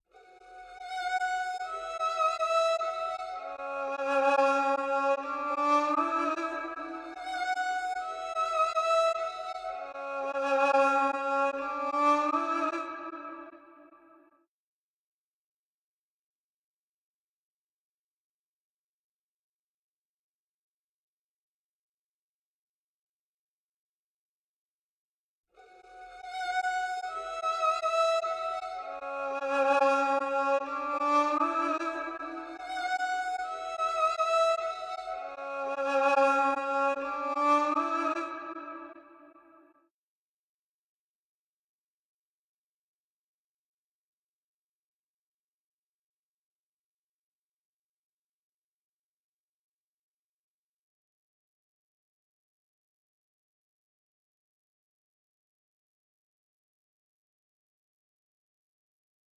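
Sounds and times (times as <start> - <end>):
trap violin in B minor: 0.2 - 14.1, 25.6 - 39.6.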